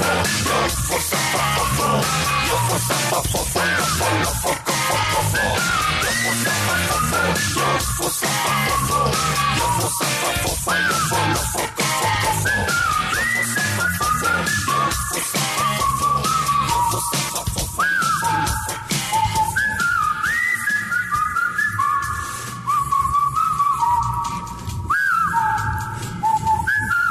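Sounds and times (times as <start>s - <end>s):
Mexican rock band playing steady driving backing: 0.0s - 19.5s
whistled melody in a Mexican rock song: 0.0s - 27.0s.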